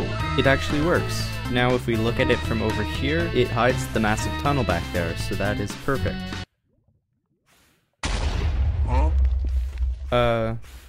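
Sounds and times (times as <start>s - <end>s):
speech: 0.4s - 6.4s, 10.1s - 10.8s
video game explosion: 8.0s - 10.4s
deep lingering explosion rumble: 8.0s - 10.8s.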